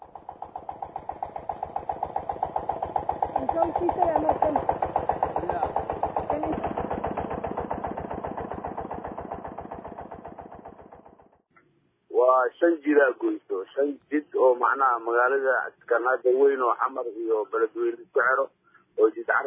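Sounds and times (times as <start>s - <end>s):
motor fitted on a farm in place of a pump chugging: 0.0s - 11.4s
speech: 3.6s - 4.8s, 12.6s - 19.4s.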